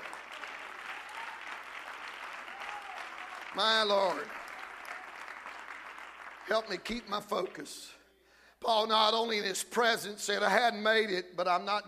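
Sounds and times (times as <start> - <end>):
congregation applauding: 0.0 - 7.8
speech: 3.6 - 4.4, 6.5 - 8.0, 8.6 - 11.8.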